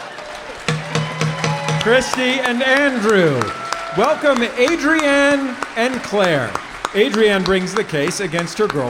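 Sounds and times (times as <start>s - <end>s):
gavel banging: 0.7s - 2.2s
speech: 1.8s - 8.8s.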